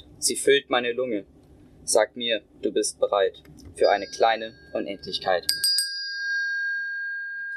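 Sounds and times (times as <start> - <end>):
speech: 0.2 - 5.7
single dinner bell ringing: 3.8 - 7.5.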